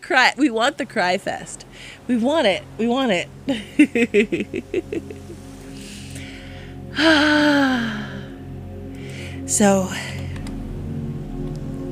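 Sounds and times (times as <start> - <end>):
speech: 0.1 - 5.4, 7.0 - 8.0, 9.5 - 10.2
person deep breathing in and out: 1.7 - 2.1, 5.3 - 11.0
laughter: 3.5 - 5.4.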